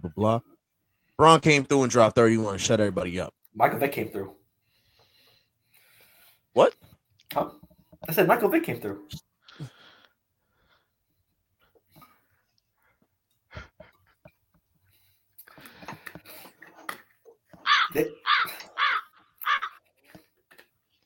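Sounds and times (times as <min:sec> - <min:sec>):
speech: 0:00.1 - 0:00.5, 0:01.2 - 0:04.4, 0:06.6 - 0:09.8, 0:17.9 - 0:18.3
crows cawing: 0:17.6 - 0:19.8.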